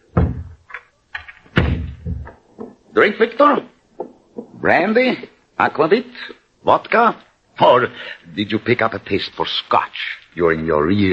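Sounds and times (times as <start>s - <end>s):
doors of a chateau study being shut: 0.1s - 0.6s, 1.5s - 2.7s
speech: 3.0s - 3.7s, 4.6s - 11.1s.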